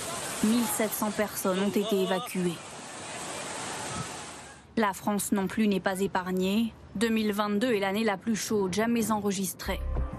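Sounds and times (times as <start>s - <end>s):
rushing floodwater at the Petra archaeological site in Jordan: 0.0s - 4.7s
torrential rain at the Petra archaeological site in Jordan: 0.0s - 4.7s
speech: 0.4s - 2.7s, 4.8s - 9.9s.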